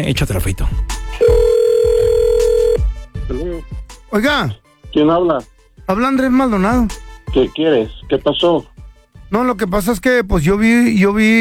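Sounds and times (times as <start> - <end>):
speech: 0.0 - 1.3, 4.1 - 8.7, 9.3 - 11.4
telephone ringing tone as a number is dialed: 1.2 - 2.8.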